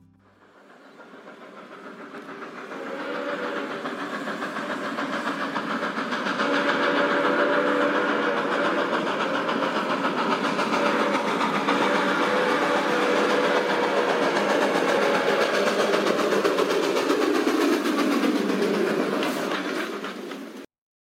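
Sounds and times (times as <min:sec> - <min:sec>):
train rumbling past: 0:00.0 - 0:20.7
long sustained train whistle blaring: 0:02.6 - 0:04.5, 0:06.2 - 0:16.1.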